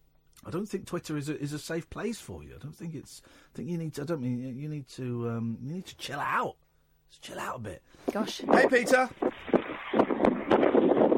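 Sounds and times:
speech: 0:00.4 - 0:09.3
gusty wind buffeting a caller's phone microphone during a radio phone-in: 0:08.1 - 0:11.1.

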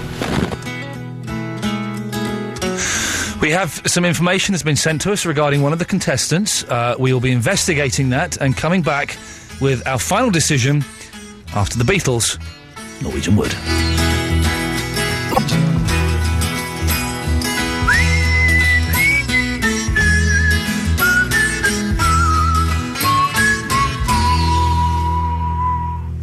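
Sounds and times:
busy instrumental backing music: 0:00.0 - 0:26.2
speech: 0:03.4 - 0:14.3, 0:15.4 - 0:16.0
person whistling a tune: 0:17.8 - 0:26.2.

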